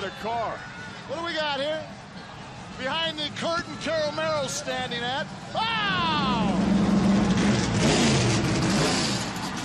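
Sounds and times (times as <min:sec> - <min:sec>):
speech: 0:00.0 - 0:02.2, 0:02.8 - 0:06.7
race car engine revving: 0:06.2 - 0:09.6.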